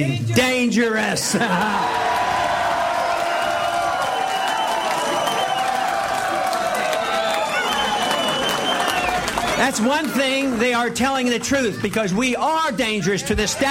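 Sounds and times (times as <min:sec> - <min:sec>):
speech: 0:00.0 - 0:02.2, 0:09.6 - 0:13.6
laughter: 0:01.2 - 0:02.4
large crowd of people in their twenties clapping and cheering at a political primary party: 0:01.3 - 0:12.7
shouts and whoops from a young crowd: 0:01.5 - 0:10.4.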